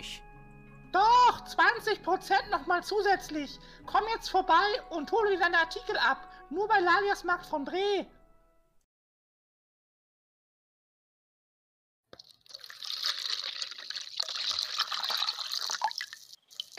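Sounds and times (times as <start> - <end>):
speech: 0.9 - 8.2
fresh spring water being poured: 12.1 - 16.7.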